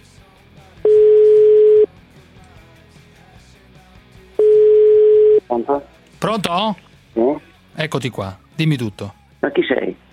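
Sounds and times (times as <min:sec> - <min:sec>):
telephone line tone while placing a call: 0:00.9 - 0:01.9, 0:04.4 - 0:05.4
speech: 0:05.6 - 0:10.0.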